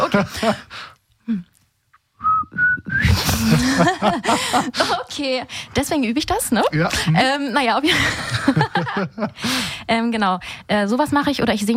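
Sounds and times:
speech: 0.2s - 1.5s, 2.5s - 11.7s
person whistling a short tune: 2.2s - 3.2s
laughter: 3.0s - 5.1s, 7.8s - 9.4s.

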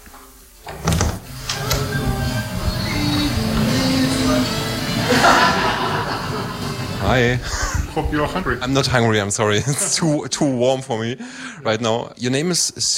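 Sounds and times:
door hinges creaking squeal: 0.6s - 4.2s
laughter: 4.8s - 8.7s, 9.4s - 10.2s
speech: 7.1s - 12.9s.

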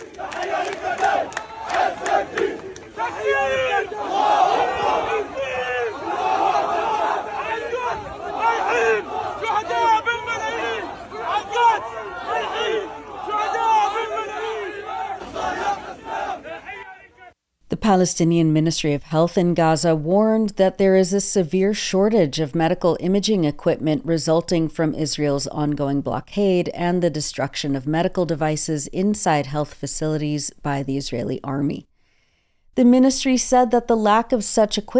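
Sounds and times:
crowd of mourners in funeral procession shouting and chanting: 0.0s - 17.4s
speech: 17.9s - 31.9s, 32.8s - 34.9s.

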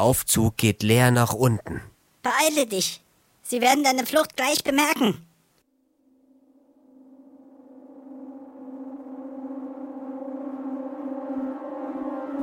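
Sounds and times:
speech: 0.0s - 5.3s
loud alarm siren wailing: 6.8s - 12.4s.

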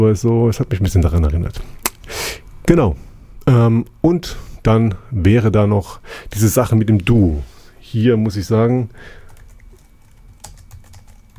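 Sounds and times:
speech: 0.0s - 9.2s
typing on a computer keyboard: 9.2s - 11.3s.

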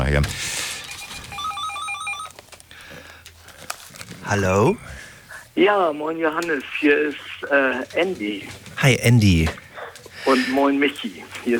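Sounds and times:
faint room noise: 0.0s - 11.5s
speech: 0.1s - 0.5s, 4.3s - 5.0s, 5.6s - 9.6s, 10.2s - 11.5s
telephone ringing with rapid electronic trill: 0.6s - 2.3s.

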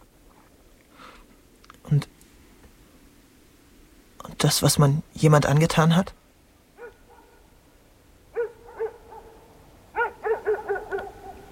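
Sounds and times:
speech: 1.9s - 2.1s, 4.4s - 6.2s
dog barking: 6.8s - 7.6s, 8.3s - 11.5s.

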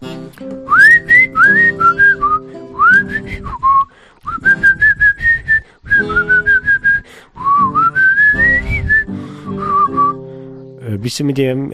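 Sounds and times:
person whistling a tune: 0.7s - 10.2s
speech: 11.0s - 11.7s.

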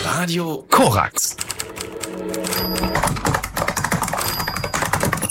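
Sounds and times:
speech: 0.2s - 3.4s
rapid clattering keystrokes from a keyboard or typewriter: 1.3s - 5.2s
faint tonal beep: 2.5s - 3.1s, 4.2s - 5.2s.

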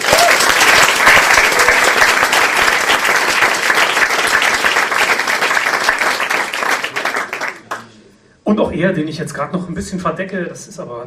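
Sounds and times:
large audience applause: 0.0s - 7.8s
speech: 8.5s - 11.0s.

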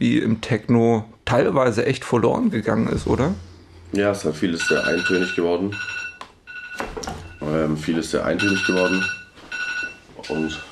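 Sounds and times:
speech: 0.0s - 6.0s, 7.5s - 9.2s, 10.2s - 10.7s
telephone ringing with a bright electronic trill: 4.5s - 10.7s.

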